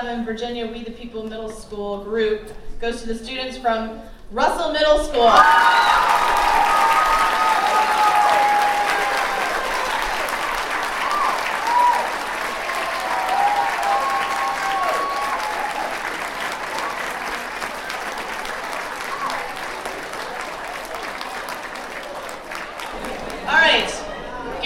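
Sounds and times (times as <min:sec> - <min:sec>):
speech: 0:00.0 - 0:06.5
voices calling out and cheering: 0:05.2 - 0:24.5
crowd applauding at a middle school civics competition awards ceremony: 0:05.3 - 0:24.1.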